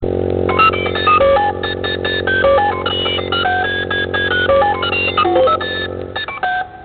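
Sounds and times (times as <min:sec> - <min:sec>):
keyboard ringtone: 0:00.6 - 0:06.8.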